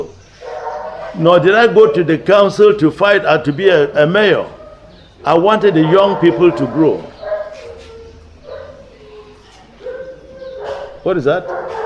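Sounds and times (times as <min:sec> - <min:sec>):
dog barking with drawn-out whiny barks: 0:00.4 - 0:01.2, 0:05.6 - 0:11.8
speech: 0:01.2 - 0:04.6, 0:05.2 - 0:07.1, 0:11.0 - 0:11.8.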